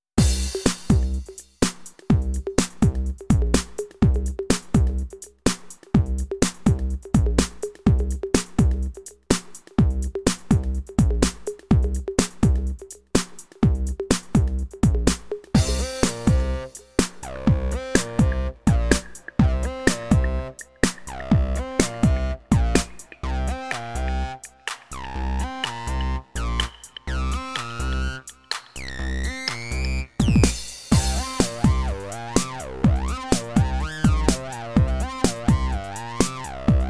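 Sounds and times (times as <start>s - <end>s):
dirty electro music: 0.2s - 36.8s.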